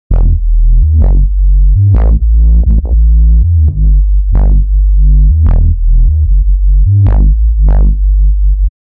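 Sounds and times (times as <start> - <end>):
club trance music with heavy bass: 0.1 - 8.7.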